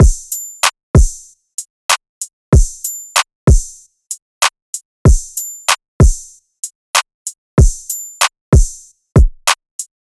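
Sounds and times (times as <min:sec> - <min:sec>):
West Coast drum loop: 0:00.0 - 0:01.3, 0:02.5 - 0:02.9, 0:03.5 - 0:03.8, 0:05.1 - 0:06.3, 0:07.6 - 0:08.0, 0:08.6 - 0:09.9.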